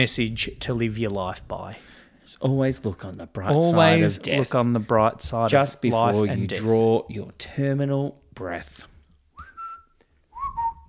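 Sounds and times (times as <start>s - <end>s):
speech: 0.0s - 8.9s
person whistling a short melodic phrase: 9.4s - 10.8s.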